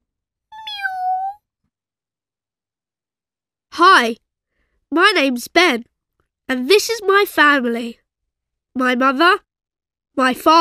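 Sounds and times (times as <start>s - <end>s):
cat meowing: 0.5s - 1.4s
speech: 3.8s - 4.2s, 4.9s - 5.9s, 6.5s - 8.0s, 8.8s - 9.4s, 10.2s - 10.6s.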